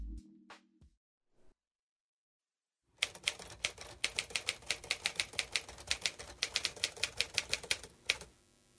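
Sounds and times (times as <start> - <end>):
manual typewriter keystrokes: 3.0 - 8.3.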